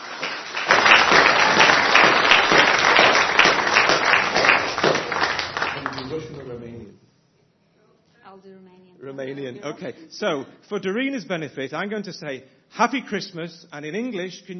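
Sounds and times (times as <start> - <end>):
audience applause: 0.0 - 6.6
speech: 9.6 - 14.5.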